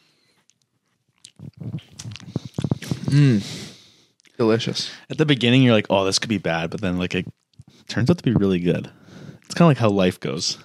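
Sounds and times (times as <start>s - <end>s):
person sipping a milky drink: 1.2s - 4.4s
speech: 3.1s - 3.6s, 4.4s - 9.0s, 9.6s - 10.6s.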